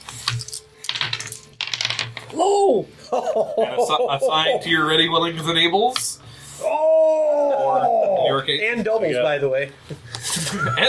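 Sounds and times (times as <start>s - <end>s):
dice clattering across a hard table: 0.1s - 2.4s
speech: 2.3s - 10.8s
laughter: 3.0s - 4.9s, 10.2s - 10.8s.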